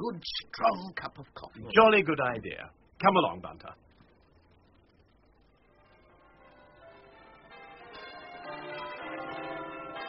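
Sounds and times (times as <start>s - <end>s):
speech: 0.0s - 3.8s
church bells ringing in a continuous peal: 6.0s - 10.0s.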